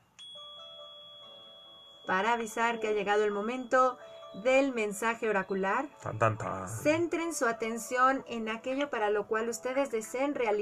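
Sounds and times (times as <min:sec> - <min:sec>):
small metallic hand bell ringing: 0:00.0 - 0:04.7
speech: 0:02.1 - 0:10.6.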